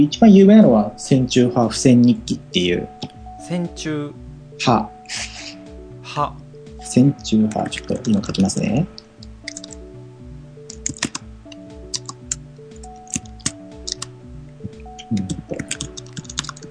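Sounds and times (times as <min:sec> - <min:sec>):
speech: 0:00.0 - 0:05.4, 0:06.1 - 0:09.0
soft tonal melody: 0:00.0 - 0:16.6
rapid irregular computer keyboard typing: 0:07.6 - 0:08.5, 0:09.4 - 0:09.8, 0:10.7 - 0:14.1, 0:14.7 - 0:16.6.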